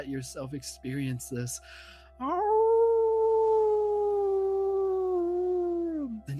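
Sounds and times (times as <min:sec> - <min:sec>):
speech: 0:00.0 - 0:02.7
wolf howling: 0:02.3 - 0:06.3.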